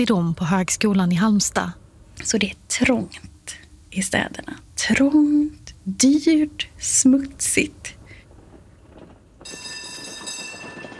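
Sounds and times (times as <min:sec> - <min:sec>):
speech: 0:00.0 - 0:08.0
horse-drawn tram rumbling along its rails: 0:04.3 - 0:10.9.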